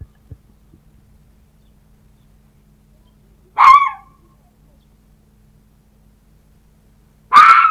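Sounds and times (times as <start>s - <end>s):
red fox giving a hoarse harsh bark: 3.5s - 4.3s, 7.3s - 7.6s.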